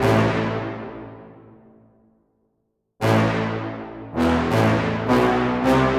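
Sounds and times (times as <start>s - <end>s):
tuba: 0.0s - 1.8s, 3.0s - 5.9s.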